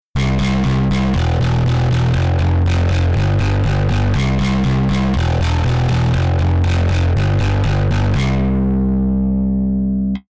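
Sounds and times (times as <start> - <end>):
bass with distortion effector: 0.1 - 10.3.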